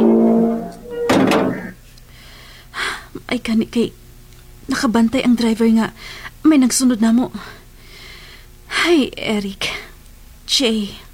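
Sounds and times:
gate clattering shut: 0.0s - 1.8s
speech: 3.3s - 4.0s, 4.7s - 7.6s, 8.8s - 9.7s, 10.5s - 11.0s.

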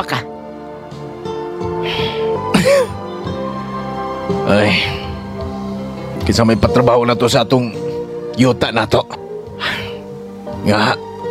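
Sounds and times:
speech: 0.0s - 0.3s, 4.4s - 5.0s, 6.3s - 7.8s, 8.4s - 9.7s, 10.6s - 11.0s
steady low drone: 0.3s - 11.2s
person coughing with throat-clearing rasp: 2.5s - 3.0s.

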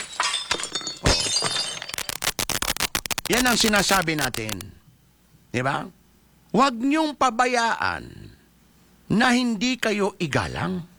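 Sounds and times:
plates and a glass cabinet shattering: 0.0s - 2.5s
tinkling glass shards: 0.0s - 4.6s
speech: 3.3s - 4.8s, 5.5s - 8.3s, 9.1s - 10.9s.

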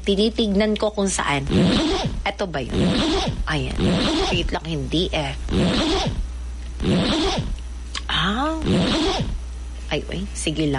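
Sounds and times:
speech: 0.0s - 6.2s, 6.8s - 7.5s, 9.9s - 10.7s
zipper being pulled: 1.5s - 4.5s, 5.5s - 6.2s, 6.8s - 7.6s, 8.6s - 9.4s
high-pitched vocal whine: 1.5s - 4.6s, 6.8s - 9.4s.

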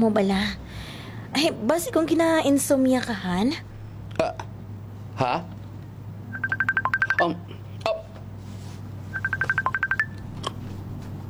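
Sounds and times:
speech: 0.0s - 0.6s, 1.3s - 4.4s, 5.2s - 5.5s, 7.2s - 7.6s
cellphone ringing with rapid electronic beeps: 6.3s - 7.4s, 9.1s - 10.2s.

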